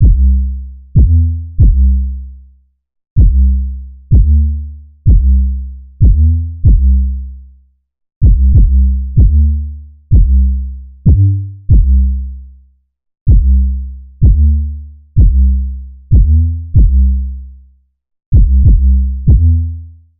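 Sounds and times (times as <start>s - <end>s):
808 bass loop in C: 0.0s - 2.0s, 4.1s - 5.4s, 6.0s - 7.0s, 8.2s - 12.2s, 13.3s - 17.2s, 18.4s - 19.8s.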